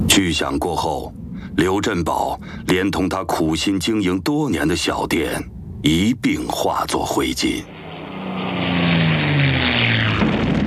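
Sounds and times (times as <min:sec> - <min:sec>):
speech: 0:00.2 - 0:07.7
Japanese propeller warplanes droning overhead during a bombing raid on Jinzhou, China: 0:05.3 - 0:10.6.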